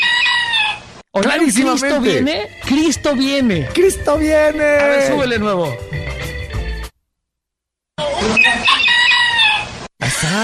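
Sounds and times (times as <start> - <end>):
rooster crowing: 0.0 - 0.9, 8.4 - 9.8
speech: 1.2 - 5.9.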